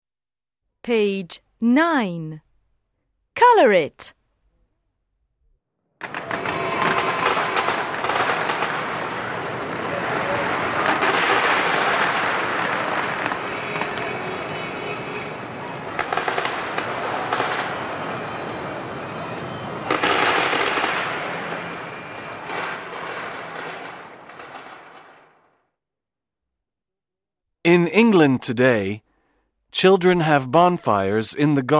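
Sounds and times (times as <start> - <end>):
speech: 0.8 - 2.5, 3.4 - 4.2, 27.6 - 29.0, 29.7 - 31.7
fireworks exploding in a dense crackling barrage: 6.0 - 25.5.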